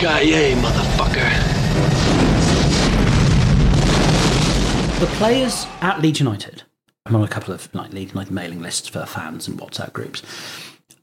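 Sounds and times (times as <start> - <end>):
speech: 0.0 - 2.4, 5.0 - 11.0
loud explosion sound effect with deep booming rumble: 0.0 - 6.1.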